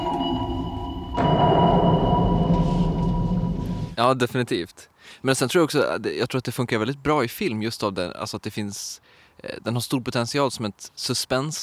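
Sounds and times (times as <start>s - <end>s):
steady droning tones: 0.0s - 4.0s
submarine sonar ping resonating through the hull: 0.0s - 4.0s
speech: 4.0s - 11.6s.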